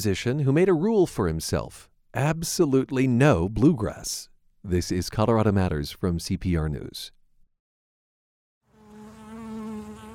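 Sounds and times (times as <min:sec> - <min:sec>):
speech: 0:00.0 - 0:07.2
bees buzzing: 0:08.7 - 0:10.1.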